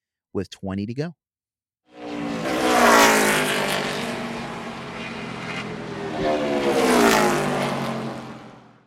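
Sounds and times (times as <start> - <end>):
speech: 0.4 - 1.2
race car engines roaring and revving on track: 2.0 - 8.8.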